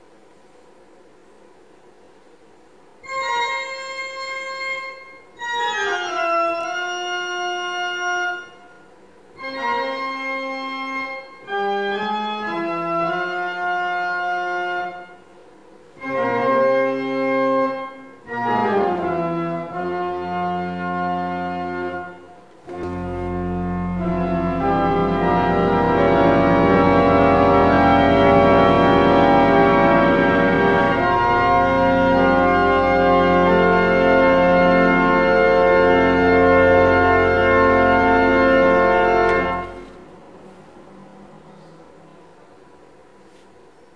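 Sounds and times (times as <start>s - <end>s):
organ: 3.0s - 8.8s, 9.4s - 15.3s, 16.0s - 40.1s.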